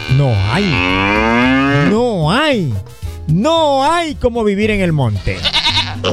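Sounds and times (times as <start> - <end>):
bull mooing in a long deep bellow: 0.0 - 2.8, 4.7 - 6.1
speech: 0.2 - 6.1.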